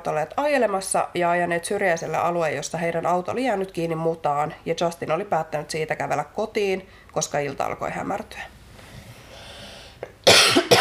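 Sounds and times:
speech: 0.0s - 8.6s
person coughing harshly: 10.2s - 10.7s.

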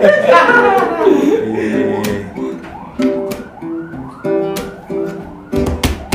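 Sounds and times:
speech: 0.0s - 0.2s
laughter: 0.0s - 2.6s
ambulance siren: 0.0s - 6.1s.

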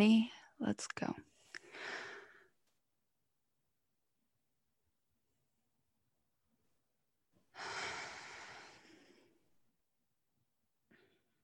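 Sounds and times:
speech: 0.0s - 2.0s
group taking a collective deep breath: 1.5s - 2.5s, 7.5s - 9.4s.

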